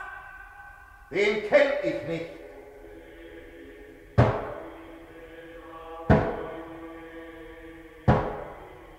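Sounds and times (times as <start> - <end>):
speech: 1.1 - 2.4
heavy knocks on a door in a stage drama: 4.2 - 4.5, 6.1 - 6.4, 8.1 - 8.4.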